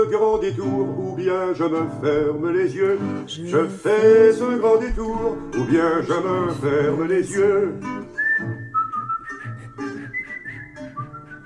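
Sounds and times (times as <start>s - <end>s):
speech: 0.0s - 8.2s
person whistling a tune: 7.8s - 11.4s.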